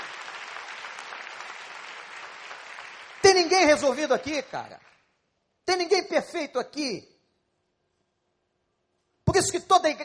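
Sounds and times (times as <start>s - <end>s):
church crowd applauding: 0.0s - 5.2s
speech: 3.3s - 4.9s, 5.7s - 7.1s, 9.3s - 10.0s.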